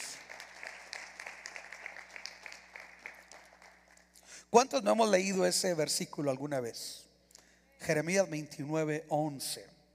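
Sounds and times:
audience clapping in a reverberant room: 0.0s - 4.2s
speech: 4.5s - 7.0s, 7.9s - 9.7s.

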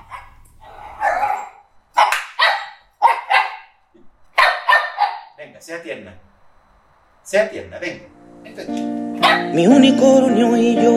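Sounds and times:
dog barking: 0.0s - 5.4s, 9.2s - 9.6s
speech: 5.5s - 6.3s, 7.2s - 10.9s.

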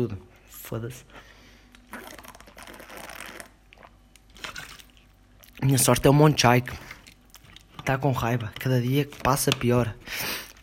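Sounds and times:
speech: 0.0s - 1.3s, 5.6s - 6.9s, 7.9s - 10.3s
person drinking water, slurping and swallowing: 1.8s - 5.0s.

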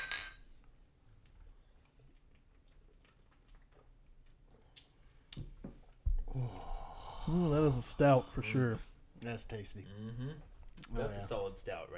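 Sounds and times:
glasses of oatmeal stout clinking in a toast: 0.0s - 0.5s
speech: 7.3s - 11.9s.

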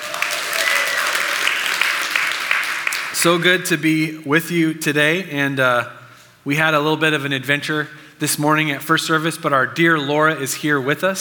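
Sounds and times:
large church audience applauding: 0.0s - 3.4s
speech: 3.2s - 11.1s.

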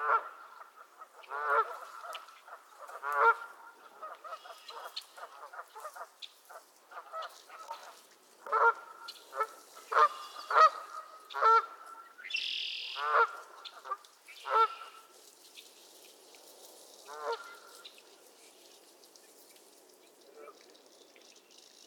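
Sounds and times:
geese honking and squabbling at a marsh in Nova Scotia: 0.0s - 6.1s, 6.9s - 15.1s, 17.1s - 17.7s.

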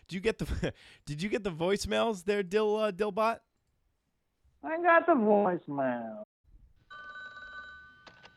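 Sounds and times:
speech: 0.1s - 3.5s, 4.6s - 6.2s
telephone ringing with a bright electronic tone: 6.8s - 8.3s.

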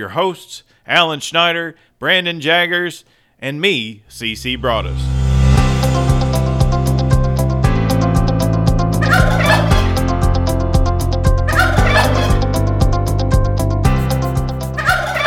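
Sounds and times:
speech: 0.0s - 5.1s
rhythmic background with regular beats and bright crashes: 4.4s - 15.2s
turkey gobbling: 9.0s - 9.8s, 11.5s - 12.4s, 14.8s - 15.2s.

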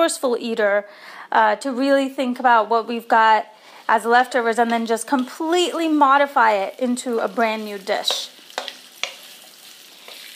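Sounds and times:
speech: 0.0s - 8.3s
food sizzling in sesame oil while stir-frying: 3.4s - 10.3s
crackling pops: 7.8s - 10.3s.

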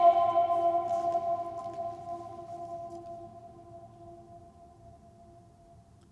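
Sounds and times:
loud voiced shout reverberating in a vast hall: 0.0s - 3.1s.

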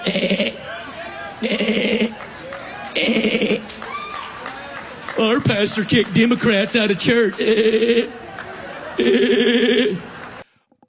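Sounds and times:
goat bleating: 0.0s - 0.6s, 1.4s - 2.2s, 3.0s - 3.7s
laughter: 0.0s - 10.4s
low murmur of crowd chatter: 0.0s - 10.4s
speech: 0.1s - 0.5s, 5.3s - 8.3s, 9.0s - 10.0s.

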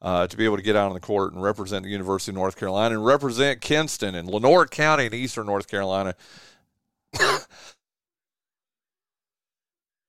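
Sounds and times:
speech: 0.0s - 6.5s, 7.1s - 7.8s
person coughing: 7.2s - 7.6s.

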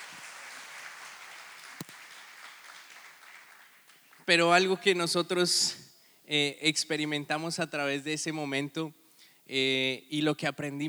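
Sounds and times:
sharp clap or knock: 0.0s - 3.6s
audience applause: 0.0s - 4.4s
speech: 4.3s - 10.8s.

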